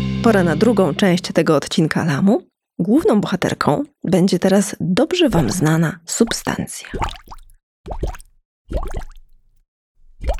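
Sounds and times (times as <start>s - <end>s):
speech: 0.2s - 9.1s
water drop plops: 5.3s - 9.4s, 10.2s - 10.3s.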